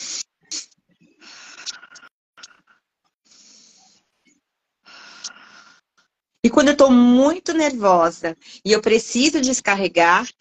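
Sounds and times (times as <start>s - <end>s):
slow breathing in through the nose and out through the mouth: 1.1s - 6.1s
speech: 6.4s - 10.3s.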